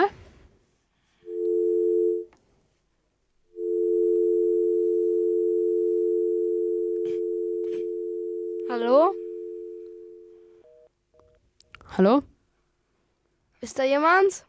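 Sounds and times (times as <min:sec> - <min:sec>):
low electronic telephone tone for an incoming call: 0:01.3 - 0:02.3, 0:03.5 - 0:10.9
speech: 0:12.0 - 0:12.3, 0:13.6 - 0:14.4.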